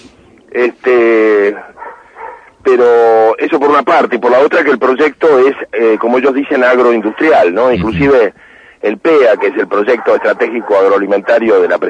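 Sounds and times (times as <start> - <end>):
speech: 0.5 - 1.7, 2.7 - 11.8
dogs barking in a chorus: 1.6 - 2.5, 9.2 - 11.5.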